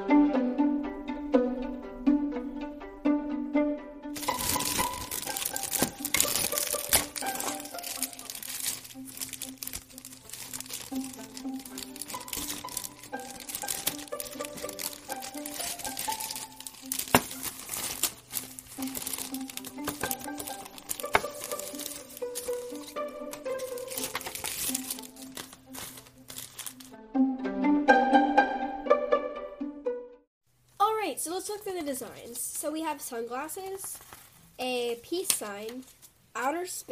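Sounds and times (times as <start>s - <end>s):
soft tuneful music: 0.0s - 30.3s
plastic packaging of a design practice kit crinkling and rustling: 4.2s - 27.0s, 33.8s - 34.5s
speech: 32.7s - 36.9s.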